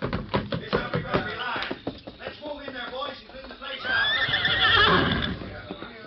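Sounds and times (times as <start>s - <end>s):
clatter of horse hooves: 0.0s - 6.0s
several horses whinnying and neighing: 3.6s - 5.7s.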